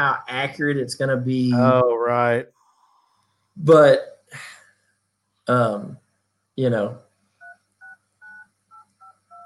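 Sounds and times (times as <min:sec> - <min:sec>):
speech: 0:00.0 - 0:02.6, 0:03.6 - 0:04.6, 0:05.5 - 0:06.0, 0:06.6 - 0:07.0
cell phone keypad dialing tones: 0:07.4 - 0:09.4.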